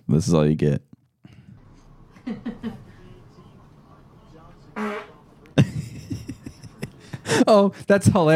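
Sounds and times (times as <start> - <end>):
speech: 0.1 - 0.9, 2.3 - 2.8, 7.4 - 8.3
laughter: 1.7 - 7.9
fart sounds from a farting compilation: 4.7 - 5.3.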